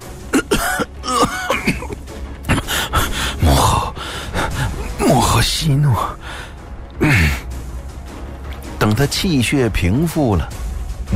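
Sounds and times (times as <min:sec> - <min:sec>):
emperor in a historical drama coughing violently: 0:00.3 - 0:03.8, 0:07.0 - 0:07.4
sharp gasping breaths: 0:02.5 - 0:04.9
speech: 0:05.6 - 0:06.2, 0:09.0 - 0:11.1.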